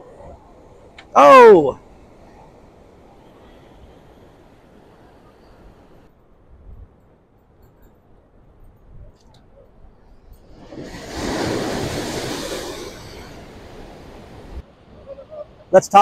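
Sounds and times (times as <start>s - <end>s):
ocean waves breaking on shore: 0.0s - 6.1s, 10.1s - 15.9s
speech: 1.2s - 1.8s, 15.8s - 15.9s.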